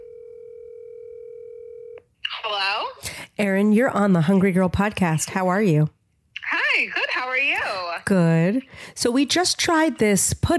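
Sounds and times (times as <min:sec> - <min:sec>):
steady telephone dial tone with faint thin overtone: 0:00.0 - 0:02.1
speech: 0:02.4 - 0:06.0, 0:07.4 - 0:10.5.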